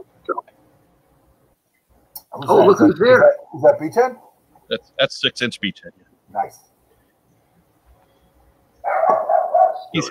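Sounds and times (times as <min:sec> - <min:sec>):
speech: 0:02.4 - 0:06.7
single loud dog bark: 0:08.8 - 0:10.0.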